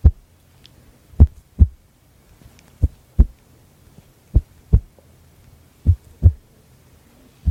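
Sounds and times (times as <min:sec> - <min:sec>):
ASMR trigger low thumps imitating a heartbeat: 0:00.0 - 0:00.2, 0:01.2 - 0:01.8, 0:02.8 - 0:03.4, 0:04.3 - 0:04.9, 0:05.9 - 0:06.4.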